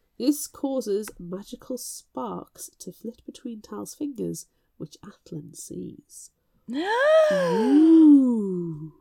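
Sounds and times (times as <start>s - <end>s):
speech: 0.2s - 8.9s
loud voiced gasp of surprise with breathy exclamation: 6.7s - 8.9s.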